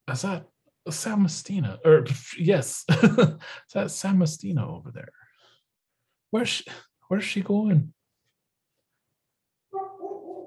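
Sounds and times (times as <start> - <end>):
speech: 0.1 - 5.2, 6.3 - 8.0
laughter: 2.8 - 3.6
dog barking: 9.7 - 10.4.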